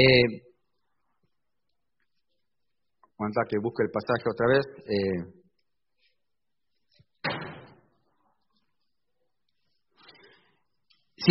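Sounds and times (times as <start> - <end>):
speech: 0.0 - 0.4, 3.2 - 5.4
door slamming shut: 7.2 - 7.9.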